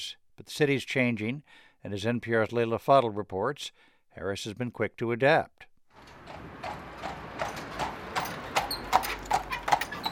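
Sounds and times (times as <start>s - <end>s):
speech: 0.0s - 6.5s
horses' hooves trotting on a hard street: 6.0s - 10.1s.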